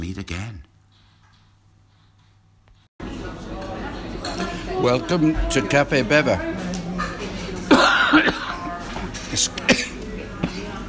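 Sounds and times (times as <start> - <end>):
speech: 0.2 - 0.7, 4.8 - 6.5, 9.3 - 9.9
person coughing from a piece of chips going down the wrong way: 7.7 - 8.6, 9.6 - 10.6.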